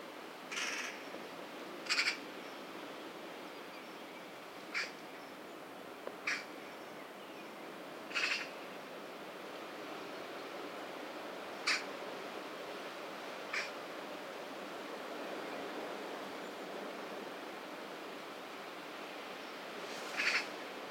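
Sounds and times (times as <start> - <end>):
quiet hiss: 0.0 - 20.8
Eurasian magpie Pica pica harsh rasping calls: 8.1 - 8.5, 20.2 - 20.4.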